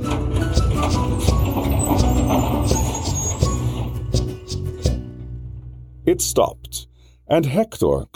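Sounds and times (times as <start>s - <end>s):
bus rattling and jolting on a rough dirt road: 0.0s - 3.6s
rickety old bus engine drone in the Andes Mountains: 0.0s - 6.0s
speech: 6.1s - 8.1s.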